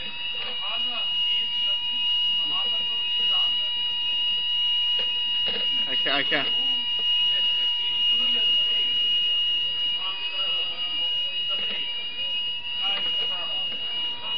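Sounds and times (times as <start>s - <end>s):
people talking during a lecture: 0.0s - 4.3s, 5.0s - 14.3s
fire alarm ringing with a piercing electronic tone: 0.0s - 14.3s.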